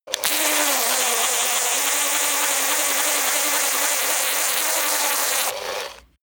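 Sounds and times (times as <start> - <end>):
servo hum oscillating: 0.1 - 6.2.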